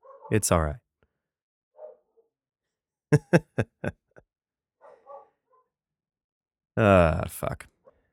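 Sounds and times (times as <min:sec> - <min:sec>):
dog barking outside: 0:00.0 - 0:00.4, 0:01.8 - 0:02.2, 0:04.8 - 0:05.6
speech: 0:00.3 - 0:00.8, 0:03.1 - 0:04.0, 0:06.8 - 0:07.7
laughter: 0:03.2 - 0:04.2.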